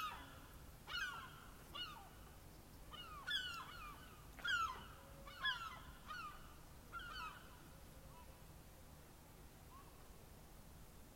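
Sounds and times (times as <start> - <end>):
gulls calling in a small secluded park in Dublin: 0.0 - 8.4.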